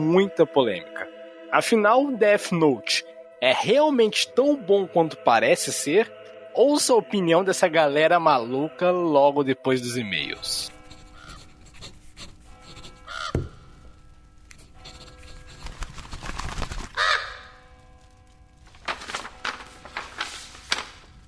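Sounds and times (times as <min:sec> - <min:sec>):
speech: 0:00.0 - 0:10.8
rustling and scraping: 0:10.7 - 0:17.0, 0:17.8 - 0:21.2
crow cawing: 0:11.1 - 0:11.6, 0:13.0 - 0:13.6, 0:16.9 - 0:17.8.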